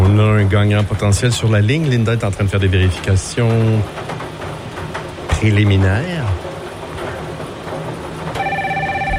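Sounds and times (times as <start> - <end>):
speech: 0.1 - 4.1, 5.4 - 6.2
telephone with a steady electronic ring: 8.4 - 9.1.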